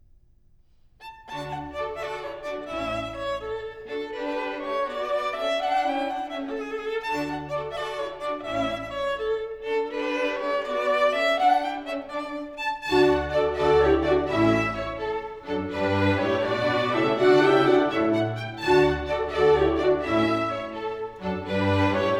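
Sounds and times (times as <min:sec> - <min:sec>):
viola concerto: 0:01.0 - 0:22.1.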